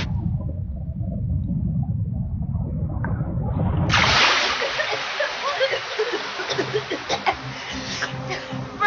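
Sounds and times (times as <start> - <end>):
deep rumble of churning water: 0.0 - 7.8
ocean wave crashing over swimmers near a reef: 3.8 - 7.2
fizzing splashes and bubbling surf: 3.9 - 7.9
laughter: 4.4 - 8.8.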